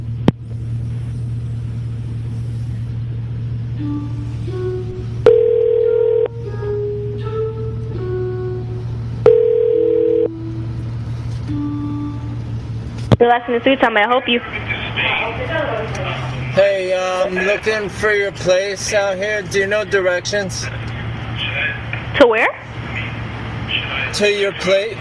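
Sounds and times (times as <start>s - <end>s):
steady low phone line hum: 0.0s - 24.9s
phone line ringing while a call is put through to an extension: 5.2s - 6.3s, 9.2s - 10.4s
speech: 13.2s - 14.6s, 17.3s - 20.8s, 22.2s - 22.8s, 24.0s - 24.9s.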